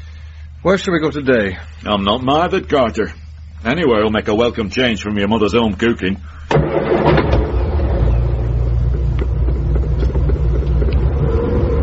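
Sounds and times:
speech: 0.6s - 6.8s
car engine starting and pulling away: 6.5s - 11.8s.

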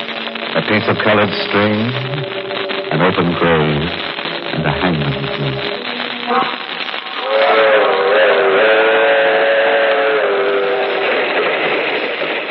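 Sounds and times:
speech: 0.7s - 2.3s, 2.9s - 6.6s
wavering humming drone from the rails: 1.7s - 12.5s
passenger train rushing along: 7.4s - 12.5s.

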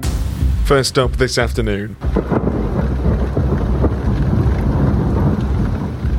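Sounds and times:
deep rumbling thunder: 0.2s - 6.1s
speech: 0.7s - 2.3s
rain hissing: 1.3s - 6.1s.

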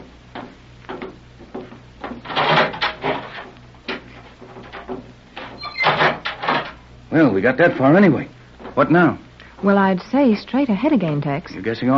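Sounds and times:
low steady hum: 0.0s - 11.9s
heavy steel door grinding as it slides open: 2.2s - 3.5s, 5.4s - 6.8s
speech: 7.1s - 11.9s.

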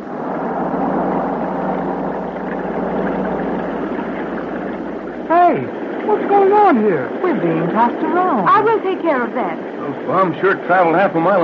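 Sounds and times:
boat engine running on water: 0.0s - 11.4s
speech: 6.7s - 11.4s.

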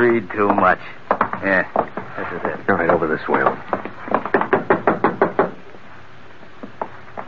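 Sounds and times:
speech: 0.1s - 3.8s
loud knocking on a door: 0.5s - 5.6s.

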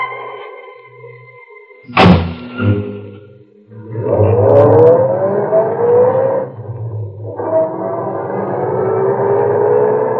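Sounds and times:
car engine pulling away from a service station at night: 3.8s - 10.1s.

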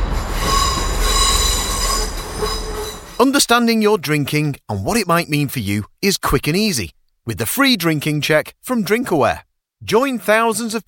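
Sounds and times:
train wheels squealing on rails: 0.0s - 3.2s
speech: 3.2s - 10.8s.

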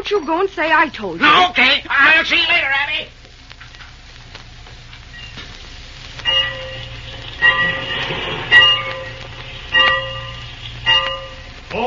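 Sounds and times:
speech: 0.1s - 3.2s
train idling at a station with a low steady rumble: 4.5s - 11.8s
train station bell clanging: 6.3s - 11.6s.

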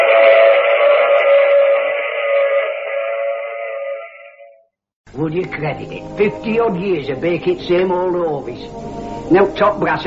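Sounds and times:
train running on rails: 0.0s - 4.5s
whistle-like tonal drone of a train: 0.0s - 4.7s
speech: 5.2s - 10.0s.

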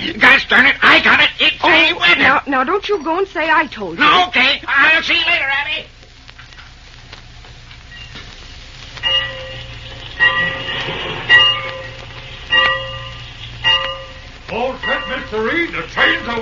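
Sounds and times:
speech: 0.0s - 5.9s, 14.5s - 16.4s
train idling at a station with a low rumble: 8.4s - 16.4s
bell clanging: 9.0s - 16.4s.

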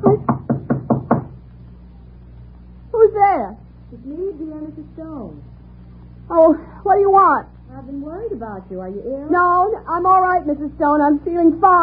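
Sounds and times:
firm hollow knocks on a door: 0.0s - 1.4s
speech: 3.5s - 5.6s, 6.3s - 11.8s.

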